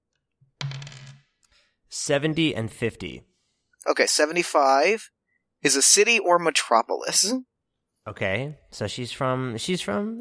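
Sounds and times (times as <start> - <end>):
two ten-sided dice rolling on a tabletop: 0.6 - 1.4
speech: 1.9 - 3.3, 3.9 - 10.1.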